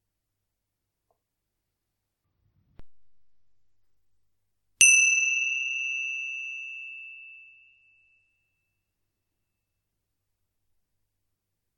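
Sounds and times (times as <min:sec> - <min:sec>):
small bell struck and ringing: 0:04.8 - 0:08.5.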